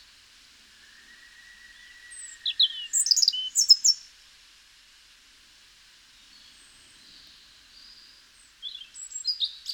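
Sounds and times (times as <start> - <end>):
European robin singing: 1.0 - 4.0, 6.3 - 9.7.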